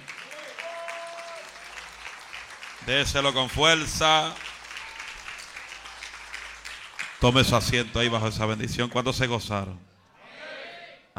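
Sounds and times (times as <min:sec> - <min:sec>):
audience applauding loudly: 0:00.0 - 0:08.7
speech: 0:02.8 - 0:04.4, 0:07.2 - 0:09.9.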